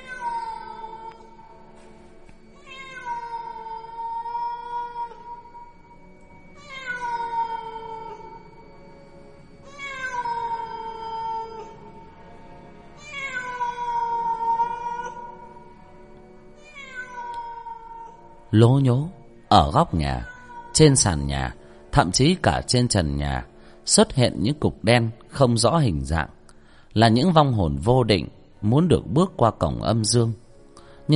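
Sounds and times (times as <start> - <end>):
feral cat yowling eerily: 0.0 - 1.5, 2.6 - 8.6, 9.6 - 12.1, 13.0 - 15.8, 16.6 - 18.4, 20.0 - 21.2
speech: 18.6 - 30.4.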